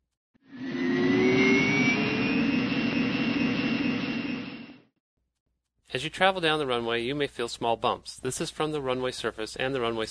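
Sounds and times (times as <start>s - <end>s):
jet engines spooling up for takeoff: 0.4s - 4.9s
speech: 6.0s - 10.0s.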